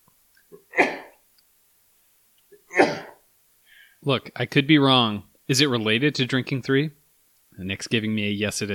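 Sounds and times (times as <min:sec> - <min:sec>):
person sneezing: 0:00.7 - 0:01.2, 0:02.7 - 0:03.2
speech: 0:04.0 - 0:07.0, 0:07.6 - 0:08.7.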